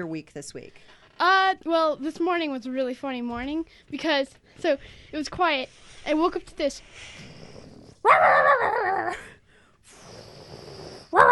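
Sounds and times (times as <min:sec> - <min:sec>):
speech: 0:00.0 - 0:07.4, 0:08.0 - 0:09.4
dog growling and barking: 0:07.5 - 0:09.2, 0:10.2 - 0:11.2.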